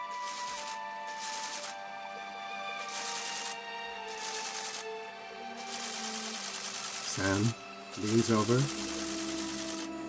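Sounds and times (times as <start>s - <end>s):
printer print head sweeping: 0.1s - 1.7s, 2.8s - 4.9s, 5.6s - 9.9s
speech: 7.2s - 8.9s.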